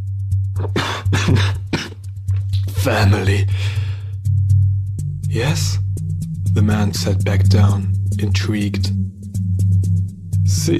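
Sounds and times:
steady low hum: 0:00.0 - 0:10.7
speech: 0:00.6 - 0:01.6, 0:02.8 - 0:03.8, 0:05.3 - 0:05.8, 0:06.6 - 0:09.2, 0:10.6 - 0:10.7
person chuckling mixed with coughing: 0:00.6 - 0:02.0.

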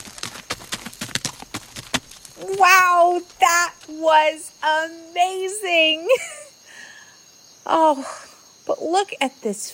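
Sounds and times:
horse hooves galloping on hard ground: 0:00.0 - 0:04.5
speech: 0:02.4 - 0:06.4, 0:07.7 - 0:09.7.

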